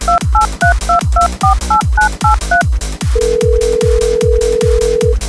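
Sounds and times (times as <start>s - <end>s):
long steady telephone ringback tones: 0.1s - 2.6s
loud thumping beat: 0.1s - 2.7s
touch-tone telephone dialing beeps: 0.1s - 2.7s, 3.3s - 5.1s.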